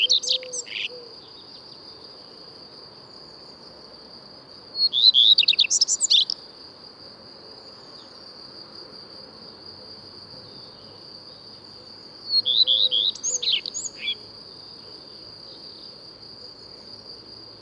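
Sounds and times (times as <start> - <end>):
Common redstart song of high quick twittering phrases: 0.0 - 1.6, 4.8 - 6.4, 12.3 - 14.2.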